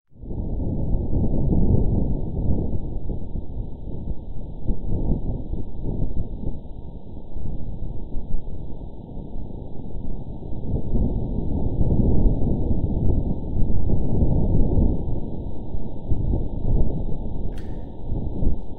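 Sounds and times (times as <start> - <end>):
Martian wind recorded by rover pressure sensor: 0.2 - 18.7
sharp click: 17.5 - 18.7.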